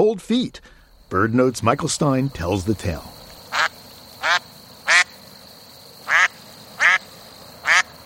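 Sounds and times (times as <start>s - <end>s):
speech: 0.0s - 3.2s
steady faint hiss: 0.1s - 8.0s
ducks quacking: 1.9s - 5.2s, 6.0s - 8.0s.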